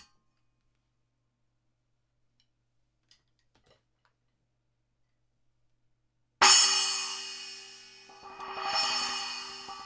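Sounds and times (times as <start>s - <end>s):
8-inch splash cymbal: 6.5s - 9.8s.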